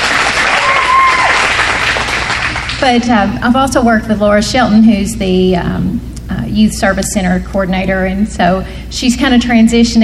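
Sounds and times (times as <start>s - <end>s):
audience applause for school staff being recognized: 0.0s - 2.8s
speech: 2.8s - 10.0s.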